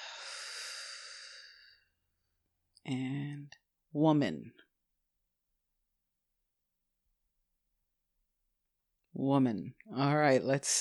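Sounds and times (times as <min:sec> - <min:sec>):
deep breath in during a guided exercise: 0:00.0 - 0:01.8
speech: 0:02.8 - 0:04.7, 0:09.2 - 0:10.7.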